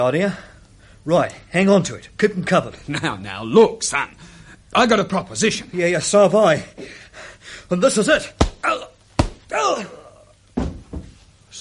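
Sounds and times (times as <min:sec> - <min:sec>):
speech: 0:00.0 - 0:08.9
dull thuds: 0:08.3 - 0:09.5
heavy punch knocking a man down: 0:08.4 - 0:09.5
pained grunt: 0:09.5 - 0:10.3.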